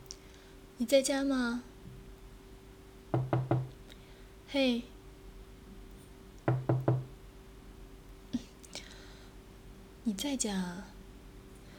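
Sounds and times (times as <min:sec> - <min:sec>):
steady faint hum: 0:00.0 - 0:11.7
speech: 0:00.8 - 0:01.7, 0:04.5 - 0:04.9, 0:10.2 - 0:11.0
knocking on a door: 0:03.1 - 0:03.8, 0:06.5 - 0:07.1.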